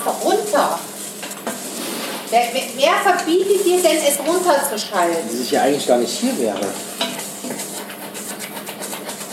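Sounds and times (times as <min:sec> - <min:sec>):
food sizzling and burning in a hot pan on a stove: 0:00.0 - 0:09.3
speech: 0:02.3 - 0:07.2
scraping clinks of food being stirred in a pan: 0:06.5 - 0:09.3.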